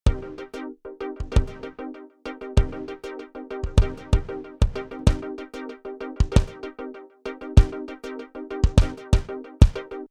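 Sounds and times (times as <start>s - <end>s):
transient kick drum: 0.1s - 0.3s, 1.2s - 1.7s, 2.6s - 2.9s, 3.6s - 5.3s, 6.2s - 6.6s, 7.6s - 7.8s, 8.6s - 9.9s.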